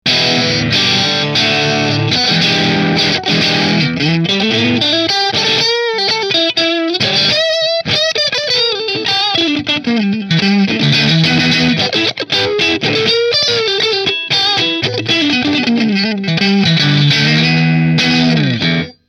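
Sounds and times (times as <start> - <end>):
electric guitar through a Marshall amplifier: 0.1 - 19.0.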